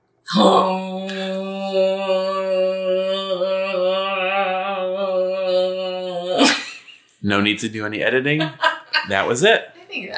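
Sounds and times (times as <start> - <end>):
speech: 0.3 - 0.8, 7.3 - 10.1
person imitating a spoiler horn blast: 0.3 - 6.6
laughter: 8.3 - 9.4.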